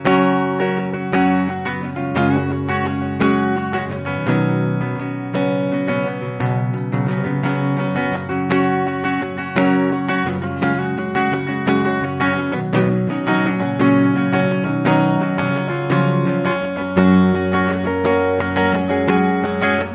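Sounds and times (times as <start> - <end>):
folk guitar playing in six-eight time: 0.0 - 19.9.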